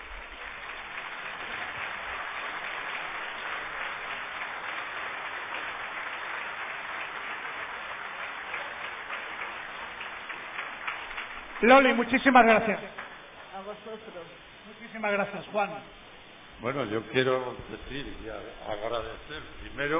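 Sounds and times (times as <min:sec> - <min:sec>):
crowd applauding: 0:00.0 - 0:14.2
speech: 0:11.6 - 0:13.0, 0:13.7 - 0:16.0, 0:16.6 - 0:19.9.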